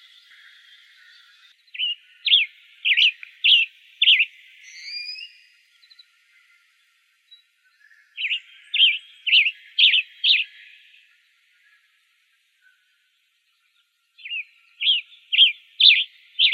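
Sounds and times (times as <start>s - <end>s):
western tanager rapid chirped calls in Arizona: 0.0s - 6.7s, 7.3s - 11.0s, 14.2s - 16.5s.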